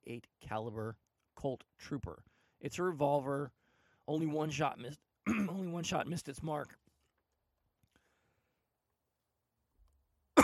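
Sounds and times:
speech: 0:00.1 - 0:06.8
cough: 0:05.2 - 0:05.8.

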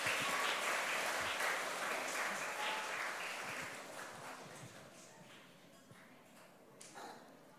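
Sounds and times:
large group of children clapping: 0:00.0 - 0:04.8.

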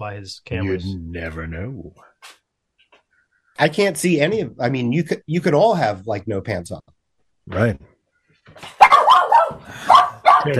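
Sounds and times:
speech: 0:00.0 - 0:02.4, 0:03.6 - 0:07.9, 0:08.5 - 0:08.8, 0:09.7 - 0:10.5
dog barking aggressively: 0:08.8 - 0:10.5.

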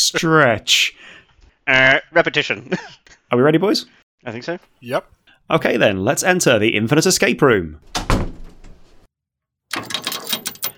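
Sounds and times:
speech: 0:00.0 - 0:08.4, 0:09.8 - 0:10.0
door sliding with a brighter rattling scrape: 0:09.7 - 0:10.7.

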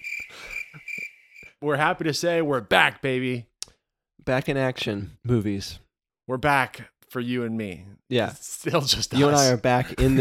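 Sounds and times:
crickets chirping: 0:00.0 - 0:01.5
speech: 0:01.6 - 0:03.5, 0:04.2 - 0:10.2.

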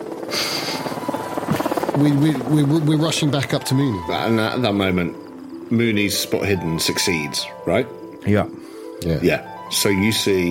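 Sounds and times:
helicopter rotor chopping while flying overhead: 0:00.0 - 0:07.2
speech: 0:02.0 - 0:10.4.

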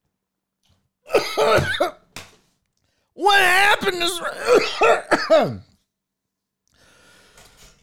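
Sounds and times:
person coughing fit: 0:01.1 - 0:02.0, 0:04.3 - 0:05.7
speech: 0:01.4 - 0:02.0, 0:03.9 - 0:05.7.

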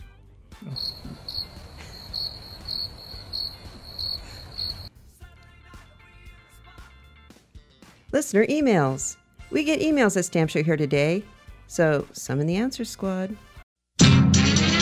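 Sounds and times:
crickets chirping: 0:00.6 - 0:04.9
speech: 0:08.2 - 0:13.5.

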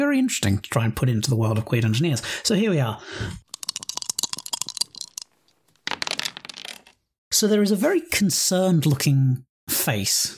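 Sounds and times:
speech: 0:00.0 - 0:03.5, 0:07.4 - 0:10.3
dice rolling and clattering across a surface: 0:03.5 - 0:07.1.

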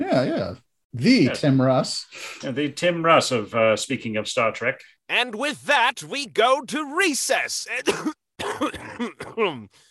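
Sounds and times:
speech: 0:00.1 - 0:09.8
person clearing throat: 0:07.8 - 0:09.7
person coughing: 0:07.8 - 0:09.7.

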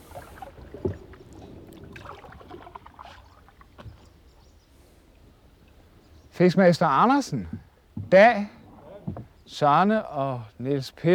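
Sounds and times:
flat-bottomed boat moving through water: 0:00.0 - 0:11.1
light wind noise: 0:00.0 - 0:11.1
knocks against a flat-bottomed boat hull: 0:00.6 - 0:01.2, 0:07.4 - 0:09.4
speech: 0:06.4 - 0:08.6, 0:09.5 - 0:11.1.

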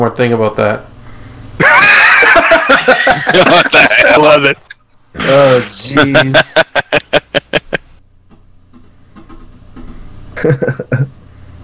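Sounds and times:
speech: 0:00.0 - 0:00.9, 0:02.9 - 0:06.8, 0:10.4 - 0:11.1
person screaming imitating a character shrieking: 0:01.6 - 0:02.4
laughter: 0:01.6 - 0:07.9, 0:10.4 - 0:11.1.

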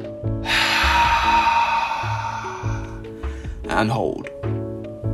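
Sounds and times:
faint tonal background: 0:00.0 - 0:05.0
slow exhale during a breathing exercise for sleep relaxation: 0:00.4 - 0:03.6
speech: 0:03.8 - 0:04.4.

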